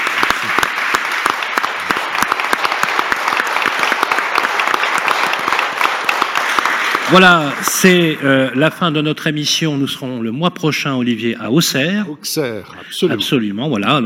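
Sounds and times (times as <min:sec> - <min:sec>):
audience applause: 0:00.0 - 0:09.1
speech: 0:07.1 - 0:14.0.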